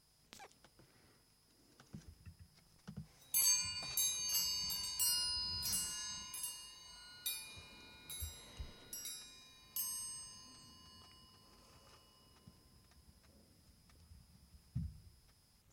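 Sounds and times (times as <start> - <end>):
soft rustling: 1.9 - 14.6
bright metallic chimes: 3.2 - 13.0.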